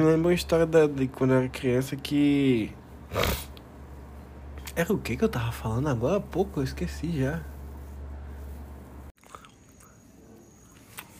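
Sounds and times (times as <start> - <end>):
speech: 0.0 - 3.5, 4.8 - 7.5
low steady hum: 0.0 - 11.1
person chewing while eating: 9.2 - 10.0.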